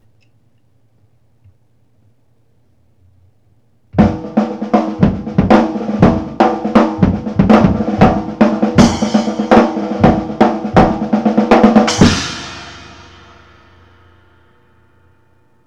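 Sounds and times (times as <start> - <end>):
acoustic snare drum break: 4.0 - 14.0.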